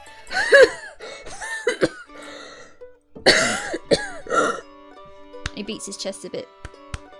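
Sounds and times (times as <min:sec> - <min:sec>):
person coughing fit with harsh throaty coughs: 0:00.4 - 0:02.1, 0:03.2 - 0:04.6
throat clearing: 0:03.3 - 0:04.6
speech: 0:05.7 - 0:06.7.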